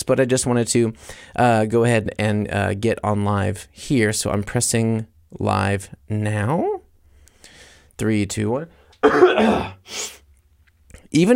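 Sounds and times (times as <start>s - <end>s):
speech: 0.1s - 6.8s, 8.0s - 10.2s, 11.1s - 11.3s
person clearing throat into a microphone: 9.0s - 9.9s.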